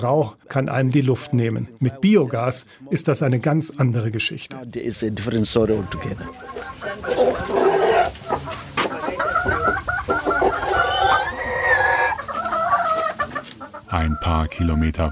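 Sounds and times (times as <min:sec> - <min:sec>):
speech: 0:00.0 - 0:07.6, 0:13.9 - 0:15.0
hens clucking on a small farm: 0:04.8 - 0:15.0.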